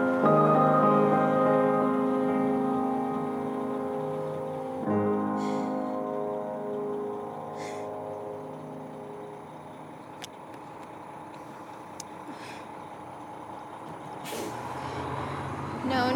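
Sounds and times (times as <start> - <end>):
large bus idling: 0.0 - 16.1
bus air brakes hissing: 1.8 - 6.2, 7.5 - 8.1, 11.4 - 16.1.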